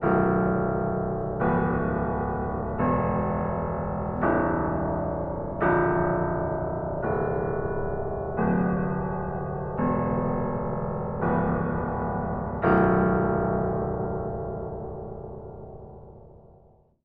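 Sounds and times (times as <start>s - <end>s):
piano: 0.0s - 17.0s.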